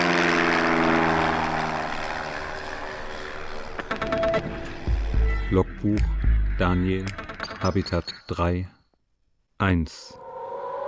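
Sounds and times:
propeller aircraft starting up and taking off: 0.0s - 5.4s
speech: 5.5s - 8.8s, 9.6s - 10.2s.

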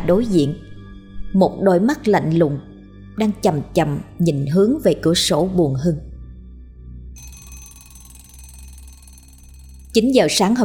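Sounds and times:
speech: 0.0s - 0.7s, 1.3s - 6.1s, 10.0s - 10.6s
alarm clock ringing in a house to wake a late sleeper: 7.2s - 10.6s.

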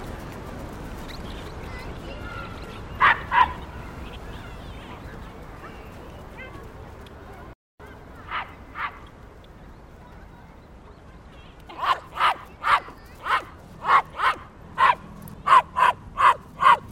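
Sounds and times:
dog barking in a yard: 3.0s - 3.6s, 11.8s - 16.9s.

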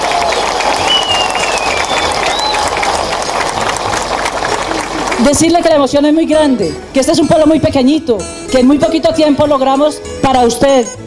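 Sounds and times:
audience applause at a public welcome in a small town: 0.0s - 5.8s
rising whistles from a crowd: 0.6s - 2.8s
speech: 5.2s - 11.0s.

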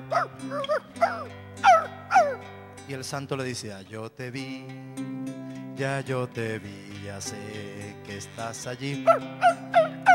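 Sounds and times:
speech: 0.1s - 9.9s
performer's voice imitating a dog at a live concert: 0.2s - 2.4s, 9.0s - 10.1s.

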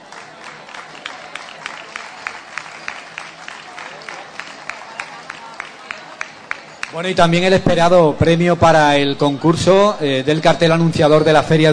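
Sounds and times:
audience applause at an awards event for a poster contest: 0.0s - 7.2s
speech: 6.9s - 11.7s.

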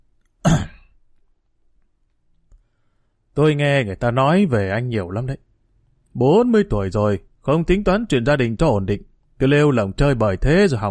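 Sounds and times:
older man clearing his throat: 0.4s - 1.0s
speech: 3.4s - 5.5s, 6.2s - 10.9s.

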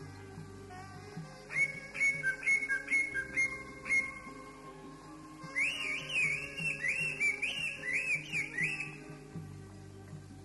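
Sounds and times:
Oriental magpie-robin giving clear whistled notes alternating between two pitches: 1.4s - 9.2s.

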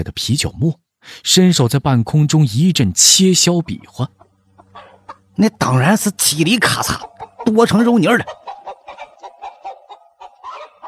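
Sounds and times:
speech: 0.0s - 4.2s, 4.8s - 8.4s
hen under a table clucking in distress: 2.9s - 10.8s.

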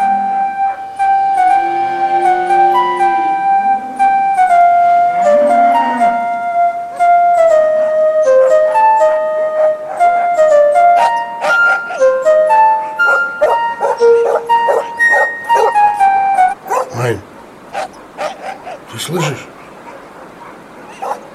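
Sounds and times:
tinkling high-pitched melody: 0.0s - 16.6s
dogs barking and yipping: 6.9s - 21.3s.

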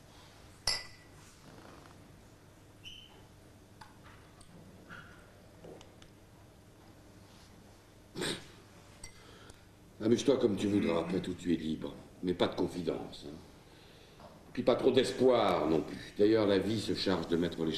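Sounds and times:
low hum: 0.0s - 17.7s
glasses clinking together in a toast: 0.6s - 1.2s, 9.0s - 9.3s
speech: 10.0s - 13.5s, 14.6s - 17.7s.

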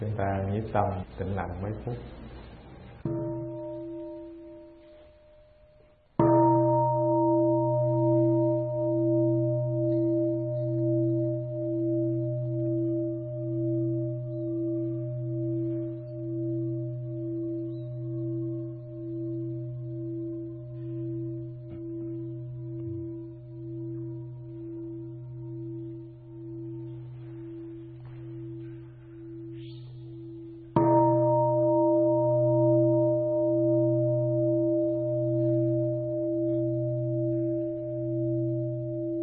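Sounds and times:
speech: 0.0s - 2.3s
meditation bell struck at a Buddhist dharma talk: 3.0s - 39.2s.

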